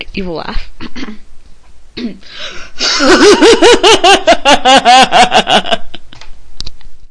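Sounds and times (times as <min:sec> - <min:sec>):
woman laughing evilly: 0:02.5 - 0:06.1.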